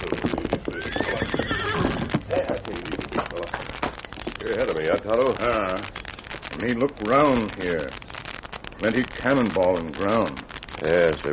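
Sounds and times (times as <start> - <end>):
paint horse whinnying: 0.0 - 2.3
paint horse hooves clip-clopping: 0.0 - 11.3
speech: 4.6 - 6.0, 6.6 - 8.0, 8.8 - 11.3.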